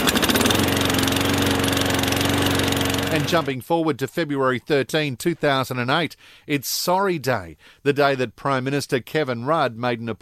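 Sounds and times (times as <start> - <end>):
lawn mower engine running: 0.0 - 3.6
speech: 3.2 - 10.2.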